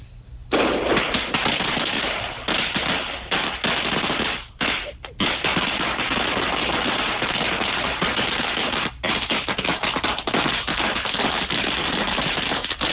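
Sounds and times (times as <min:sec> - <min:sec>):
long string of firecrackers crackling: 0:00.5 - 0:12.9.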